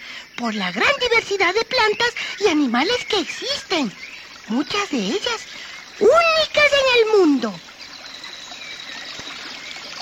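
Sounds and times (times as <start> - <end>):
speech: 0.4 - 7.7
large fast-flowing river rushing: 3.2 - 10.0.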